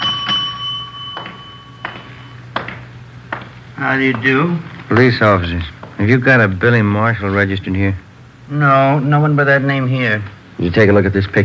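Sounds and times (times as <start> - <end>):
hotel front desk bell ringing: 0.0 - 3.4
speech: 3.8 - 11.4.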